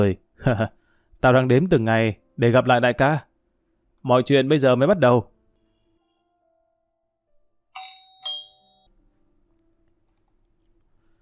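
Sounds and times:
speech: 0.0 - 3.3, 4.0 - 5.3
doorbell of a house pressed from outside: 7.7 - 8.9.

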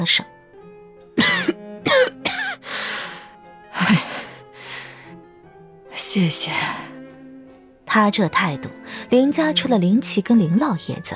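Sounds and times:
speech: 0.0 - 0.3, 6.1 - 6.9, 7.9 - 11.1
weary elderly woman coughing in a sickbed: 1.2 - 2.6
elderly woman's breathy exhalations: 2.4 - 5.2.

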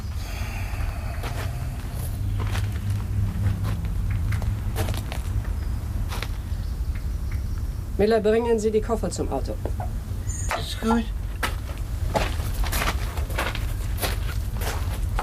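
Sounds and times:
steady low hum: 0.0 - 15.2
man's soft scuffing footsteps stepping backward: 2.4 - 5.4, 11.3 - 15.2
speech: 8.0 - 10.1, 10.8 - 11.2.

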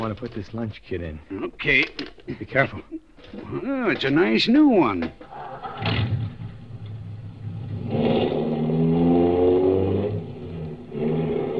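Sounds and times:
speech: 0.0 - 6.1
car engine starting: 5.3 - 11.5.

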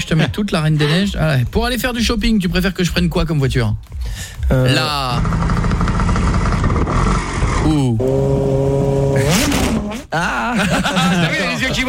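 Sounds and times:
speech: 0.1 - 5.8, 7.6 - 8.4, 10.1 - 11.8
moped engine revving: 5.0 - 9.9
laughter: 9.2 - 11.8.

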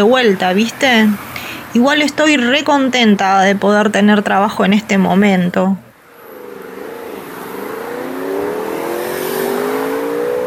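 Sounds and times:
speech: 0.0 - 5.8
road noise: 0.0 - 10.4
motorcycle passing along a street: 6.0 - 10.4.

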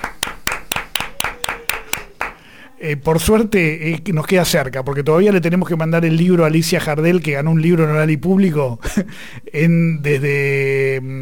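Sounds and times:
hands clapping: 0.0 - 2.4
speech: 2.8 - 11.2.

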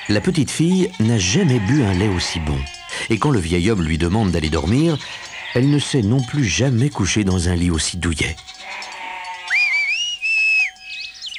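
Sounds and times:
faint chirpy sounds: 0.0 - 11.3
speech: 0.1 - 8.8
shrill whistle blast at dawn from a goatherd: 9.5 - 11.3.

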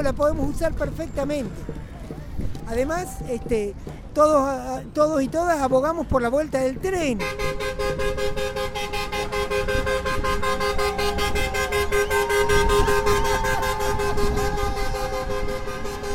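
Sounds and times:
speech: 0.0 - 1.8, 2.7 - 9.0
continuous road noise: 0.0 - 16.1
truck horn honking at an outdoor assembly: 7.1 - 16.1.

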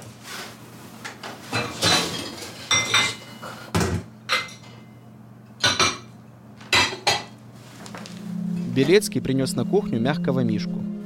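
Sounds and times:
dishes and cutlery clinking and rattling: 1.5 - 3.7, 4.3 - 4.9, 5.5 - 7.4
speech: 8.7 - 10.9.

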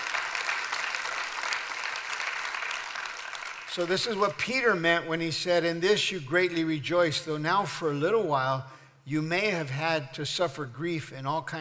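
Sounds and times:
large church audience applause: 0.0 - 3.7
speech: 3.7 - 11.5.

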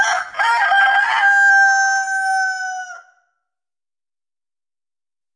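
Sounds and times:
rooster crowing: 0.0 - 3.4.

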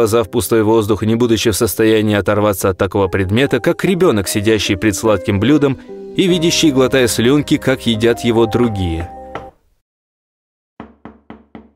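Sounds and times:
speech: 0.0 - 9.2
knocking at a door: 9.3 - 9.6, 10.8 - 11.7.

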